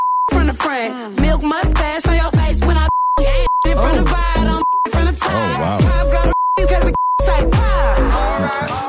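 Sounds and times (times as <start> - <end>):
short loud single-pitch censor beeps: 0.0 - 0.4, 2.8 - 5.0, 5.8 - 7.6
backing music: 0.3 - 8.8
person singing a sung vocal line: 0.3 - 8.8
speech: 0.6 - 8.8.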